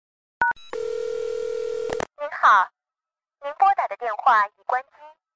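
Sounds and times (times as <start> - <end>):
steady held phone tone: 0.6 - 1.9
people speaking: 3.5 - 5.2.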